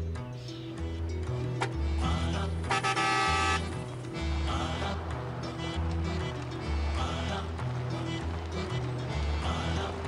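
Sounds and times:
steady rhythmic low-pitched background: 0.0s - 10.0s
car horn honking: 2.7s - 3.7s.

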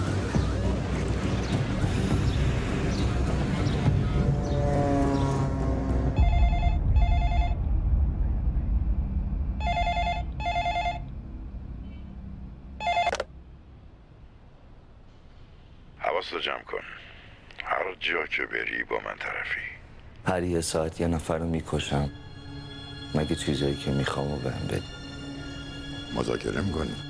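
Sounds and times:
noisy engine-like drone: 0.0s - 12.8s
steady low rumble: 1.6s - 12.8s
telephone ringing in paired electronic trills: 6.2s - 7.6s, 9.6s - 11.1s, 12.8s - 13.3s
speech: 16.3s - 17.0s, 17.8s - 22.2s, 23.1s - 25.0s, 26.1s - 27.0s.

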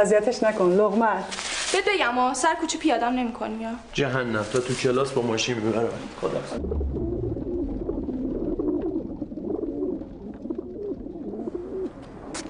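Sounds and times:
speech: 0.0s - 7.1s
pigeons cooing in a city spot where grain is scattered: 6.5s - 12.4s.

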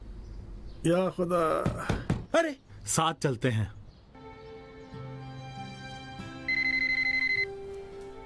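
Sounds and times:
speech: 0.8s - 3.8s
telephone ringing with electronic trill: 6.5s - 7.5s.

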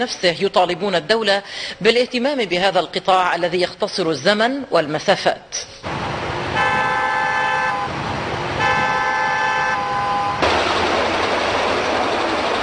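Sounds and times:
speech: 0.0s - 5.7s
dense traffic rumble: 5.8s - 12.6s
car horn blasts in a traffic jam: 6.5s - 10.4s.

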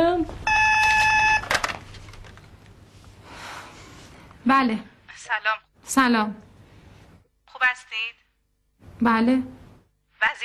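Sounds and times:
telephone tone as a call is placed in a wedding hall: 0.4s - 1.5s
speech: 4.5s - 6.5s, 7.6s - 8.2s, 9.0s - 9.6s, 10.2s - 10.4s.

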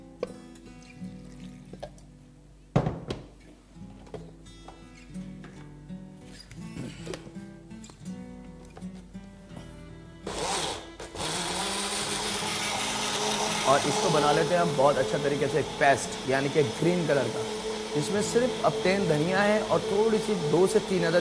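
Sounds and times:
kitchen mixer grinder motor blending coriander and green chilies into paste: 10.3s - 21.1s
speech: 13.7s - 21.1s.

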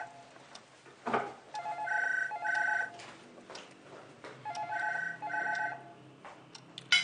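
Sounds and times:
telephone ringing with electronic warble: 0.0s - 0.4s, 1.6s - 3.1s, 4.4s - 6.0s
busy room background: 0.0s - 7.0s.

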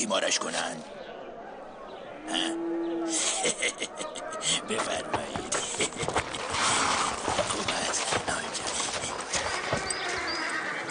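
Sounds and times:
speech: 0.0s - 1.0s, 2.3s - 6.7s
busy noise: 0.0s - 10.8s
laughter: 3.1s - 6.8s
horse hooves clip-clopping as an animal arrives to be tied up: 4.6s - 10.8s.

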